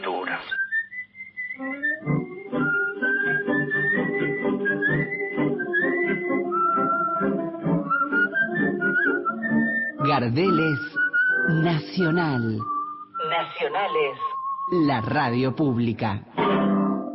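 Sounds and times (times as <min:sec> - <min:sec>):
person whistling a flowing sliding melody: 0:00.5 - 0:15.8
rhythmic tango accompaniment of plucked and bowed instruments: 0:01.6 - 0:12.9, 0:16.4 - 0:17.1
speech: 0:10.2 - 0:10.9, 0:11.5 - 0:12.7, 0:13.3 - 0:16.8.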